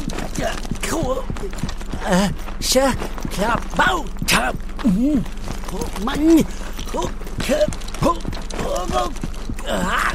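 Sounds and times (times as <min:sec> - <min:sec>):
running footsteps: 0:00.0 - 0:10.1
short wordless vocal sounds: 0:00.0 - 0:10.1
speech: 0:00.4 - 0:10.1
breathy gasps: 0:06.5 - 0:06.9.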